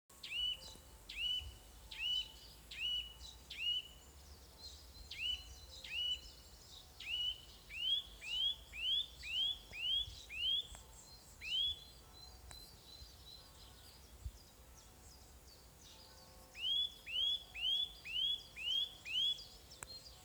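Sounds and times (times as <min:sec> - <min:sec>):
Sitta europaea calling: 0:00.2 - 0:04.0, 0:05.1 - 0:12.8, 0:16.5 - 0:19.7.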